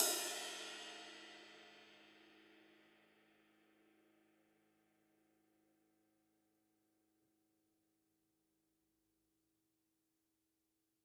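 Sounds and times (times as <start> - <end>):
ride cymbal on a drum kit: 0.0 - 1.2.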